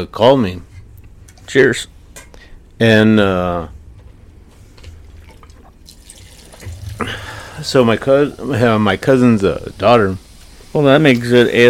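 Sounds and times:
speech: 0.0s - 0.7s, 1.5s - 1.9s, 2.8s - 3.8s, 7.0s - 10.2s, 10.8s - 11.6s
beer pouring from a freshly opened can or bottle: 5.0s - 10.9s.

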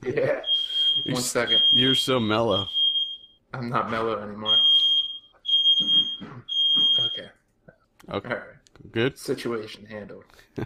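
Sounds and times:
laughter: 0.0s - 1.6s
speech: 0.2s - 2.8s, 3.6s - 4.8s, 5.8s - 7.4s, 8.0s - 10.6s
fire alarm beeping high-pitched: 0.4s - 3.4s, 4.4s - 7.4s.

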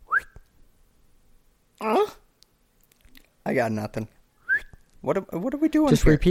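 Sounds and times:
person whistling a short tune: 0.0s - 0.4s, 4.4s - 4.8s
person imitating whistle by voice: 1.8s - 2.2s
speech: 3.5s - 4.2s, 5.0s - 6.2s.

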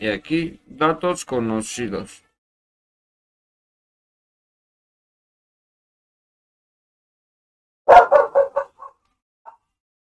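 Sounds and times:
speech: 0.0s - 2.2s
dog barking: 7.9s - 9.6s.

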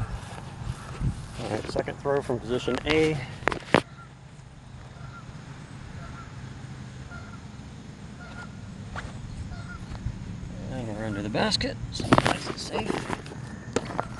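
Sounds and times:
low steady rumble: 0.0s - 14.1s
speech: 1.5s - 3.4s, 11.4s - 13.3s
Canada geese honking as they land on water: 2.9s - 14.1s.

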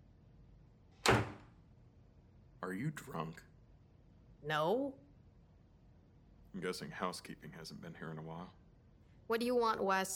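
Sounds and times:
door being pushed shut with a solid thud: 1.0s - 1.6s
speech: 2.6s - 3.5s, 4.4s - 5.0s, 6.6s - 8.6s, 9.3s - 10.1s.

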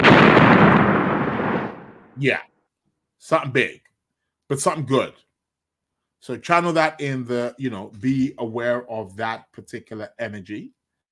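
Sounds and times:
rumbling explosion sound effect: 0.0s - 2.2s
speech: 2.2s - 2.5s, 3.2s - 3.9s, 4.5s - 5.2s, 6.2s - 10.8s.

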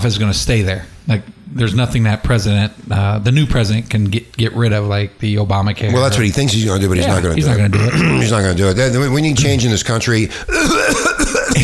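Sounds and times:
speech: 0.0s - 11.6s
harsh throaty coughs: 7.7s - 8.3s, 10.5s - 11.6s.

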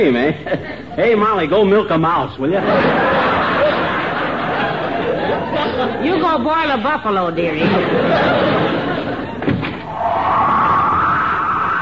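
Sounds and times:
speech: 0.0s - 3.2s, 5.8s - 9.1s
room noise: 0.0s - 11.8s
laughter: 0.1s - 1.0s, 2.5s - 6.4s, 7.6s - 9.6s
door slamming shut: 9.4s - 10.0s.

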